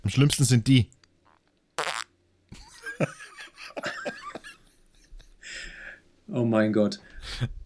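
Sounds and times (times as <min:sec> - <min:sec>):
speech: 0:00.0 - 0:01.0, 0:03.0 - 0:03.2, 0:06.3 - 0:07.6
voice imitating a wet sputtering fart: 0:01.3 - 0:02.1
laughter: 0:02.6 - 0:05.4.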